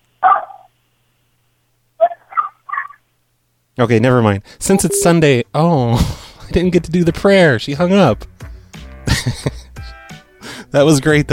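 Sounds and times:
dog barking: 0.2s - 0.7s
speech: 3.8s - 8.3s, 9.2s - 9.5s, 10.7s - 11.3s.

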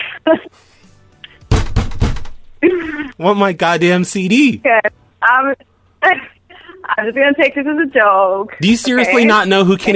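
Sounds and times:
speech: 0.3s - 0.8s, 2.8s - 6.3s, 6.9s - 9.9s
fist banging on a desk with heavy dull thuds: 1.5s - 2.5s.

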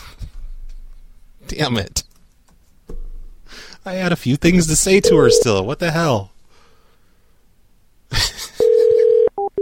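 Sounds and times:
speech: 1.5s - 2.0s, 3.8s - 6.3s
short telephone disconnect beeps: 5.0s - 5.5s
steady telephone tone: 5.0s - 5.6s, 8.6s - 9.6s.

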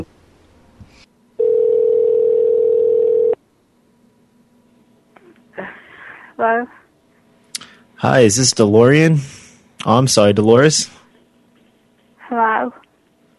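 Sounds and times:
telephone ringing tone on a call: 1.4s - 3.4s
speech: 6.4s - 6.8s, 8.0s - 11.0s, 12.3s - 12.8s.

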